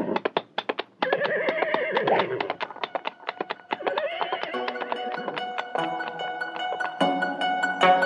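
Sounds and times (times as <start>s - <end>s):
horse hooves clip-clopping: 0.0s - 7.9s
horse whinnying: 1.0s - 2.6s, 3.8s - 4.7s.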